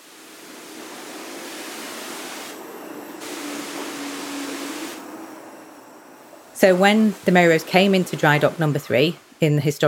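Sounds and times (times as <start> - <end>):
water spraying in a steady broad hiss: 0.0 - 2.6, 3.2 - 5.0, 6.6 - 9.7
speech: 6.6 - 9.8.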